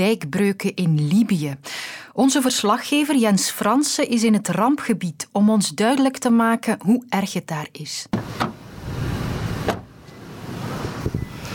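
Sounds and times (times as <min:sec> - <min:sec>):
speech: 0:00.0 - 0:08.5
car door and seat clicks and thumps: 0:08.2 - 0:08.7, 0:09.4 - 0:10.0.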